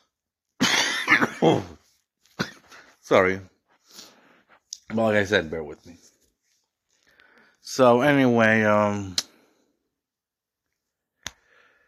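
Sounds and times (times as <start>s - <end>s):
person with a throat infection coughing: 0.6s - 2.9s
speech: 1.4s - 1.8s, 3.1s - 3.5s, 4.9s - 6.1s, 7.7s - 9.2s.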